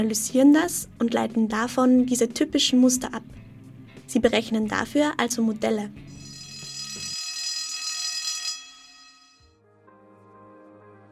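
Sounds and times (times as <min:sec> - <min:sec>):
speech: 0:00.0 - 0:03.4, 0:04.1 - 0:06.2
shrill electric alarm bell ringing: 0:06.1 - 0:09.5.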